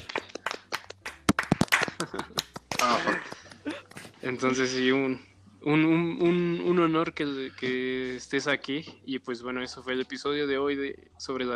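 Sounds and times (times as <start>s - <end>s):
small group applauding with sharp uneven hand claps: 0.0s - 4.1s
laughter: 1.7s - 4.2s
speech: 2.0s - 3.4s, 4.2s - 11.5s.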